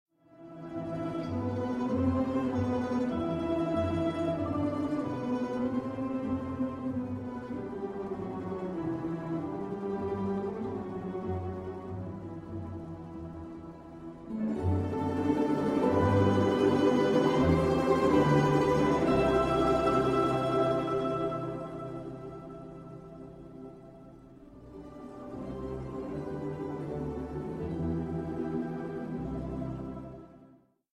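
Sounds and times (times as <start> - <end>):
balalaika with plucked strings: 0.6 - 30.1.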